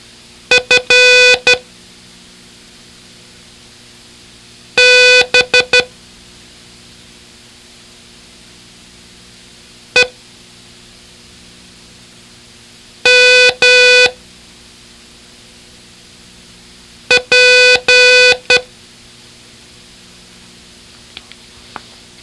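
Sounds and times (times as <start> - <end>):
Morse code beeps: 0.5 - 1.6, 4.8 - 5.9, 13.1 - 14.2, 17.1 - 18.6.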